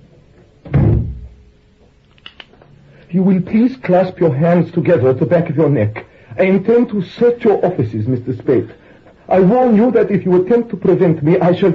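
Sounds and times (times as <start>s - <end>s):
door shutting with a solid low thud: 0.6s - 1.4s
speech: 3.1s - 11.7s.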